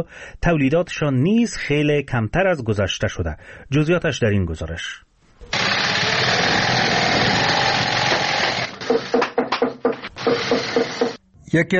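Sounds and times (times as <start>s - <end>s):
speech: 0.0s - 5.1s, 11.5s - 11.7s
sewing machines running in a shoe factory in Kabul Afghanistan: 5.5s - 9.3s, 10.1s - 11.2s
workers hammering in a shoe factory: 8.2s - 11.2s.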